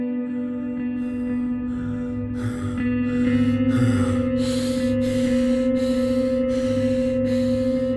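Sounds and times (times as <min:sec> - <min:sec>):
heavy shuddering gasping breaths: 0:00.1 - 0:07.9
steady low hum: 0:00.2 - 0:07.9.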